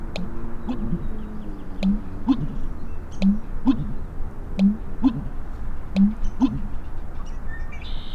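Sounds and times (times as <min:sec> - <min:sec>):
American bittern Botaurus lentiginosus deep gulping pulses: 0:00.2 - 0:01.2, 0:01.8 - 0:05.4, 0:06.0 - 0:06.8
faint high ticks: 0:03.2 - 0:03.5, 0:04.6 - 0:04.8.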